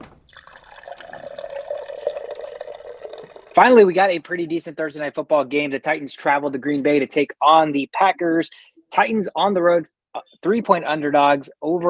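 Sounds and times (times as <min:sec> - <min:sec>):
water cooler dispensing water into a cup: 0:00.2 - 0:04.0
faint gurgling of a water cooler: 0:00.4 - 0:03.6
speech: 0:03.6 - 0:11.8.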